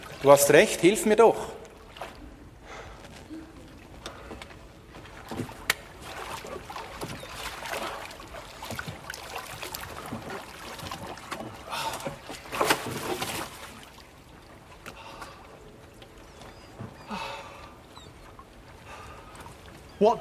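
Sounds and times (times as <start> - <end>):
sharp splashes of rowboat oar strokes: 0.0 - 20.2
water sloshing and lapping around a rowboat: 0.0 - 20.2
speech: 0.2 - 1.6.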